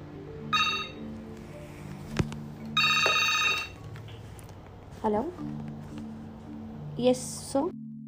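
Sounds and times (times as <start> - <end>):
mobile phone ringing: 0.4 - 1.1, 2.7 - 3.8
speech: 5.0 - 5.7, 7.0 - 7.8.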